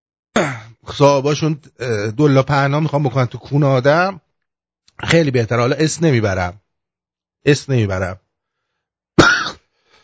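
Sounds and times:
person with a lingering cough coughing: 0.4s - 0.8s, 9.2s - 9.7s
speech: 0.4s - 4.2s, 5.0s - 6.6s, 7.4s - 8.2s.

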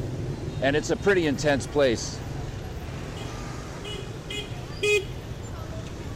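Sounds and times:
heavy street traffic on the way to a market: 0.0s - 6.1s
speech: 0.6s - 2.2s.

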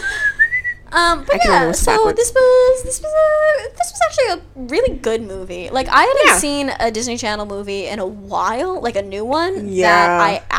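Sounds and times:
attempted whistling: 0.0s - 0.9s
speech: 0.9s - 10.5s.

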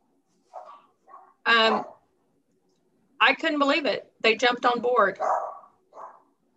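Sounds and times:
dog barking: 0.5s - 2.1s, 5.2s - 6.4s
speech: 1.5s - 1.9s, 3.2s - 5.5s.

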